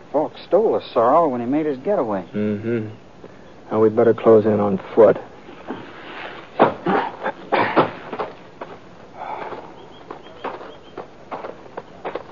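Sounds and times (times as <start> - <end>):
speech: 0.2 - 3.0, 3.7 - 5.3
horse hooves clopping and thudding on the ground: 8.0 - 12.3
soft scuffs and rustling of tethered horses moving: 8.0 - 12.3.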